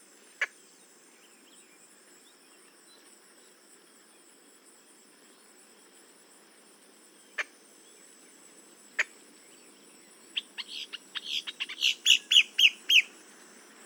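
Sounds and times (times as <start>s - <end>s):
boat-tailed grackle Quiscalus major calls: 10.4s - 13.2s.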